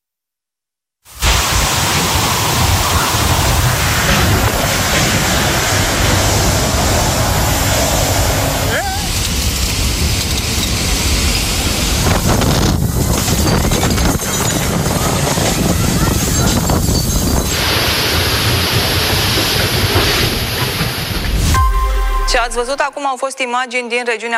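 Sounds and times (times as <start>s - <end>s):
torrential cloudburst rain roaring: 1.1s - 21.5s
strong wind gusts buffeting and surging: 1.2s - 21.5s
speech: 22.6s - 24.3s.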